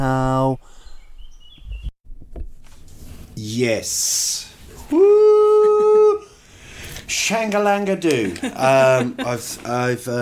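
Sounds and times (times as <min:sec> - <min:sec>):
birds chirping outdoors: 0:00.3 - 0:02.0
speech: 0:03.4 - 0:05.2, 0:07.3 - 0:10.2
laughter: 0:05.0 - 0:06.2, 0:08.0 - 0:10.2.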